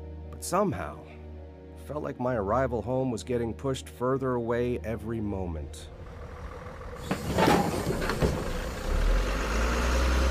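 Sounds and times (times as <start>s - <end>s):
speech: 0.4s - 1.2s, 1.9s - 6.0s
bus engine idling: 5.9s - 10.2s
clunks and rattles: 6.1s - 9.5s.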